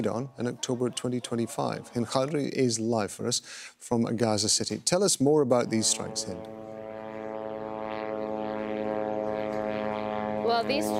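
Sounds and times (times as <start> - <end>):
laughter: 0.0 - 2.7
speech: 0.0 - 6.8, 10.5 - 10.9
small propeller aircraft droning overhead: 5.5 - 10.9.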